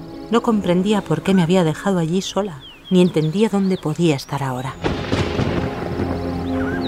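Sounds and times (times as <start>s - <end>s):
speech: 0.3s - 5.1s
deep thunder boom from an approaching storm: 4.8s - 6.8s.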